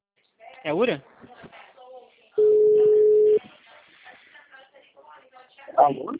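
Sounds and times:
speech: 0.6s - 1.6s, 5.8s - 6.1s
phone busy tone after a dropped call: 2.4s - 3.4s.

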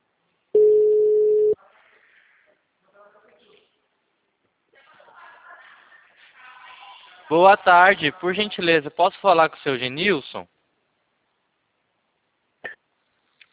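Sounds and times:
telephone ringback tone while placing a call: 0.6s - 1.6s
speech: 7.3s - 10.6s.

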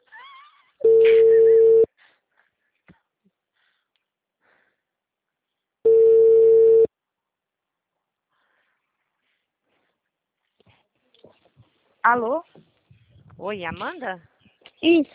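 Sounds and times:
ringback tone of an outgoing phone call: 0.8s - 1.9s, 5.9s - 6.9s
speech: 12.1s - 12.6s, 13.4s - 15.1s.

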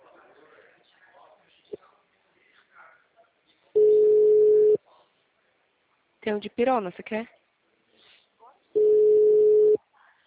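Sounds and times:
telephone ringing tone while placing a call: 3.8s - 4.8s, 8.8s - 9.8s
speech: 6.3s - 7.4s.

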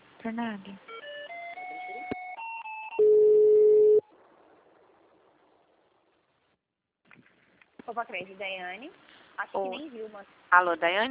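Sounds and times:
speech: 0.2s - 0.9s, 7.9s - 11.0s
telephone tones on a failed call to an office extension: 0.9s - 4.0s.

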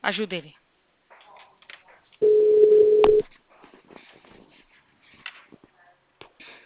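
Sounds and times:
low telephone ringback tone on an outgoing call: 2.2s - 3.2s.

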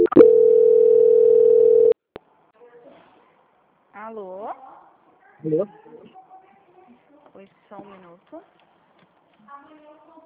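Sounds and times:
steady mid-pitched telephone line tone during a call transfer: 0.0s - 2.0s
speech: 4.1s - 4.8s, 5.4s - 6.2s, 7.4s - 8.6s.

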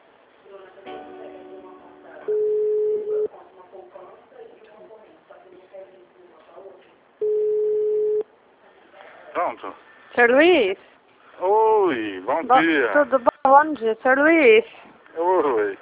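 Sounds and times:
continuous busy murmuring background: 0.0s - 7.2s, 8.2s - 15.8s
telephone line beeps while a call is transferred: 2.3s - 3.3s, 7.2s - 8.2s
speech: 9.6s - 15.8s.

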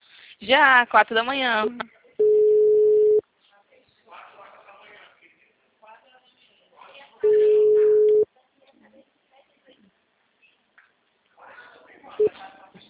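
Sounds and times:
speech: 0.4s - 2.0s
people talking quietly: 1.6s - 12.8s
telephone busy tone beeps after a dropped call: 2.2s - 3.2s, 7.3s - 8.2s.

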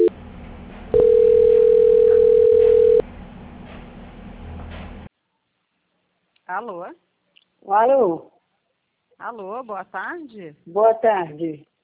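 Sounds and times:
telephone tone during call transfer: 1.0s - 3.0s
speech: 6.6s - 7.0s, 7.6s - 8.3s, 9.2s - 11.7s.

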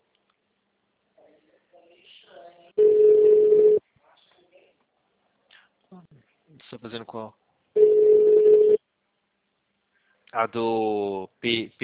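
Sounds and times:
telephone ringback tone: 2.8s - 3.8s, 7.8s - 8.8s
speech: 6.7s - 7.4s, 10.3s - 11.8s.

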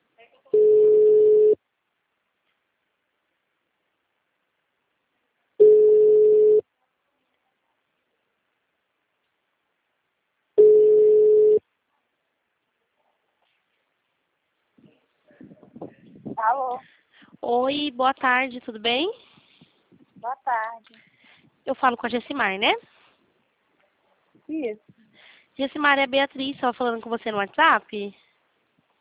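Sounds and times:
telephone ringback tone while a call is being placed: 0.6s - 1.6s, 5.6s - 6.6s, 10.6s - 11.6s
speech: 16.5s - 19.3s, 20.2s - 23.0s, 24.5s - 25.0s, 25.6s - 28.2s.

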